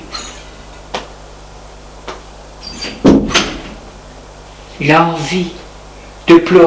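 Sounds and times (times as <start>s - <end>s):
apartment door closing with thump and rattle: 2.8s - 3.8s
speech: 4.8s - 5.6s, 6.3s - 6.6s.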